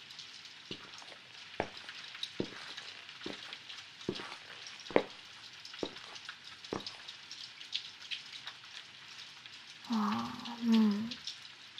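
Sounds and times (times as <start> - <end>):
sharp drips and splats: 0.0 - 11.7
steady dense rain: 0.0 - 11.7
person's voice: 9.9 - 11.2.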